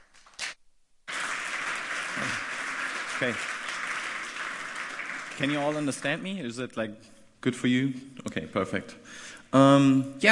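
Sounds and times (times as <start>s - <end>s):
audience applause at a technology conference talk: 1.1s - 6.4s
speech: 3.2s - 3.5s, 5.4s - 10.3s.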